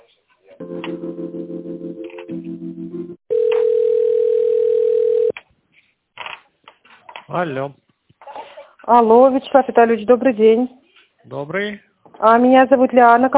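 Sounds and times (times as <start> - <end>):
buzzy pulsing telephone line tone while a call is being transferred: 3.3 - 5.3
speech: 7.3 - 7.8, 8.9 - 13.3.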